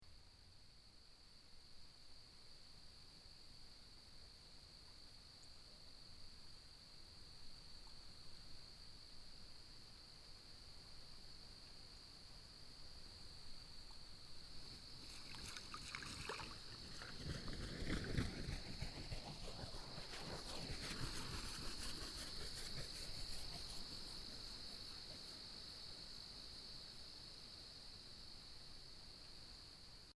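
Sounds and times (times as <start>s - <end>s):
forest ambience: 0.0s - 30.1s
Great Blue Heron taking flight: 14.7s - 25.2s.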